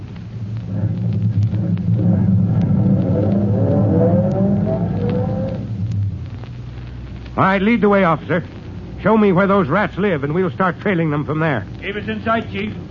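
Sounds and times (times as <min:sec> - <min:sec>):
car engine accelerating out of an alley and pulling up: 0:00.6 - 0:06.2
speech: 0:07.4 - 0:12.8.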